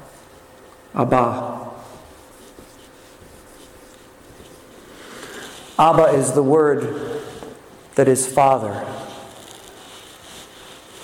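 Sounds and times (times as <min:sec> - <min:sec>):
speech: 0:01.0 - 0:01.6, 0:05.8 - 0:07.1, 0:08.0 - 0:09.1
writing on a board: 0:02.1 - 0:04.8.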